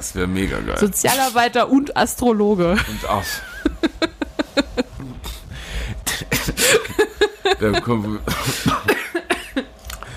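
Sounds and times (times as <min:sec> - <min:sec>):
speech: 0:00.0 - 0:04.0, 0:07.6 - 0:09.0
laughter: 0:02.8 - 0:05.2, 0:06.1 - 0:09.7
harsh coughing: 0:06.0 - 0:07.0, 0:08.3 - 0:09.6.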